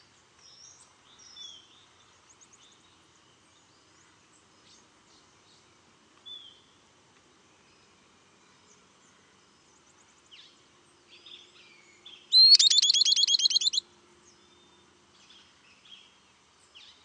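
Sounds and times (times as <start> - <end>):
Southern beardless tyrannulet high whistle: 12.3 - 13.8.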